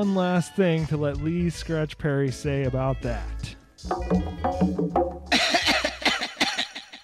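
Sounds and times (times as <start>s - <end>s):
speech: 0.0s - 5.0s
person coughing: 5.4s - 6.8s.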